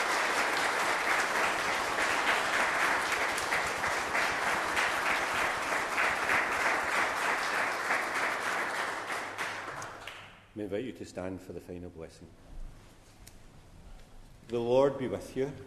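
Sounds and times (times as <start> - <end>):
audience at a Mass applauding for first Holy Communion: 0.0 - 10.4
speech: 10.7 - 12.5, 14.5 - 15.6.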